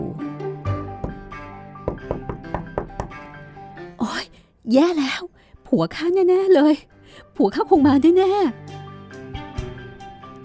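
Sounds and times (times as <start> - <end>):
soft sustained musical background: 0.0 - 10.4
sharp knocks on a door: 1.0 - 3.3
speech: 4.1 - 8.7.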